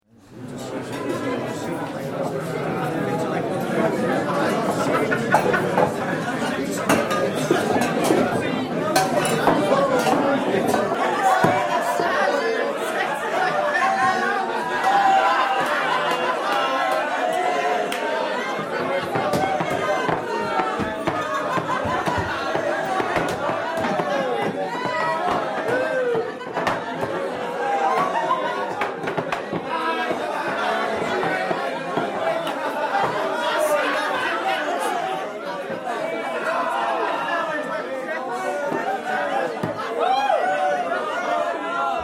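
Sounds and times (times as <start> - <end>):
lively drunken pub crowd: 0.1 - 42.0
laughter: 0.6 - 42.0
pub crowd singing: 6.8 - 35.1.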